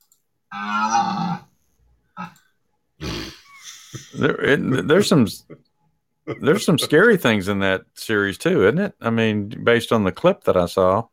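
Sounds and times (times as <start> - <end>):
speech: 0.5 - 0.9, 4.1 - 5.7, 6.3 - 11.1
half-human half-deer creature short grunt: 0.5 - 1.4, 3.0 - 3.4
half-human half-deer creature cow-like moo: 0.5 - 1.5
half-human half-deer creature harsh bellowing cries: 0.5 - 1.5.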